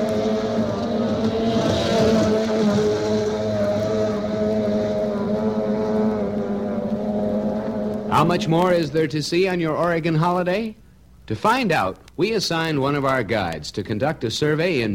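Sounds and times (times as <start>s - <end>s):
racing outboard motorboats roaring past on Prineville Lake Oregon: 0.0s - 8.9s
speech: 8.2s - 14.9s.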